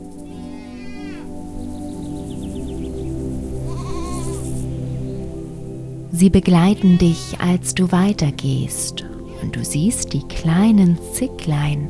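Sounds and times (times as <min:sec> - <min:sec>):
goats bleating: 0:00.3 - 0:01.3, 0:03.7 - 0:04.4, 0:06.7 - 0:07.6
speech: 0:06.2 - 0:11.8.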